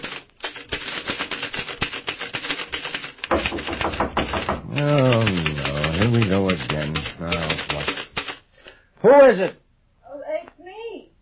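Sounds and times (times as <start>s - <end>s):
man typing on a typewriter: 0.0s - 8.4s
speech: 4.8s - 7.8s, 9.0s - 9.6s.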